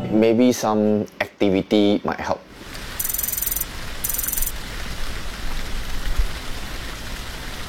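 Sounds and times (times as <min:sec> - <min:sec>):
speech: 0:00.2 - 0:02.5
steady rain falling outside in gloomy weather: 0:02.5 - 0:07.6.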